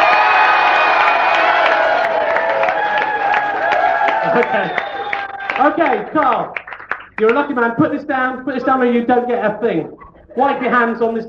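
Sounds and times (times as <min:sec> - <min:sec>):
crowd whooping and shouting: 0:00.0 - 0:06.2
crowd applauding: 0:00.0 - 0:07.7
speech: 0:04.5 - 0:04.8, 0:05.6 - 0:06.6, 0:07.2 - 0:11.2.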